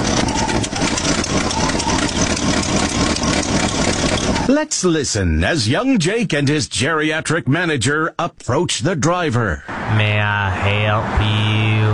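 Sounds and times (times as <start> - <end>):
engine of a junky old car rumbling: 0.0 - 4.6
speech: 4.5 - 11.9.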